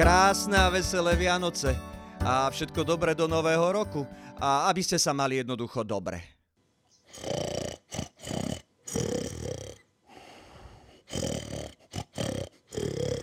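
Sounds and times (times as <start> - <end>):
speech: 0.0 - 6.4
dog snoring: 7.1 - 9.8, 11.1 - 13.2.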